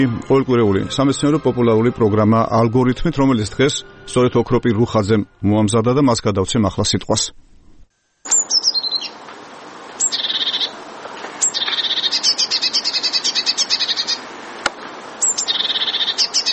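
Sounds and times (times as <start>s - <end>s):
speech: 0.0s - 7.5s
steady low hiss: 0.0s - 16.5s
great tit singing: 8.3s - 9.2s, 10.0s - 10.7s, 11.4s - 14.3s, 15.2s - 16.5s.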